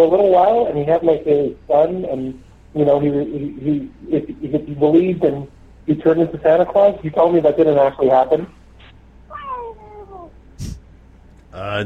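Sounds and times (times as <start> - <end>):
speech: 0.0 - 8.6, 11.6 - 11.8
cat meowing: 9.3 - 10.3.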